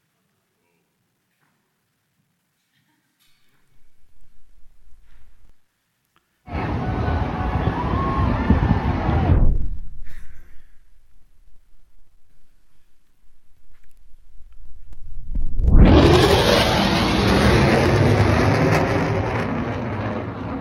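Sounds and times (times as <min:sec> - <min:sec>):
jet roaring by while breaking the sound barrier: 0:06.5 - 0:09.6, 0:15.6 - 0:20.6.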